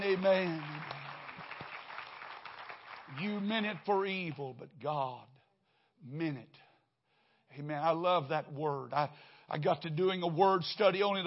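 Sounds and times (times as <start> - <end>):
audience clapping hands: 0.0 - 4.4
speech: 0.1 - 0.7, 3.2 - 5.3, 6.0 - 6.6, 7.5 - 11.2.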